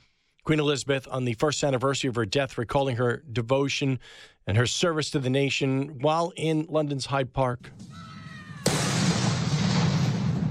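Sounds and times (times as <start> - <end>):
speech: 0.5 - 8.1
cannon salute shot in Hyde Park booming with rolling echo: 8.5 - 10.4.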